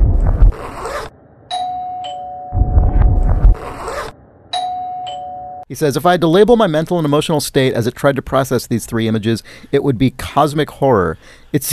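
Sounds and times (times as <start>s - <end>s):
doorbell chiming: 1.5s - 2.6s, 4.5s - 5.7s
rough scraping noise: 2.6s - 4.2s
speech: 5.7s - 11.7s.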